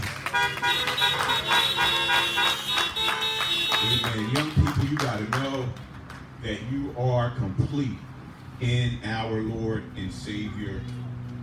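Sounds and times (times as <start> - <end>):
several car horns honking in response to a preacher during a service: 0.2 - 4.6
speech: 6.4 - 11.0.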